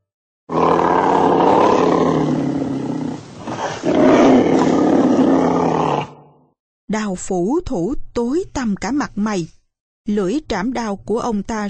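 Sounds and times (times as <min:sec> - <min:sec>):
white tiger roaring: 0:00.5 - 0:06.4
speech: 0:07.0 - 0:11.6.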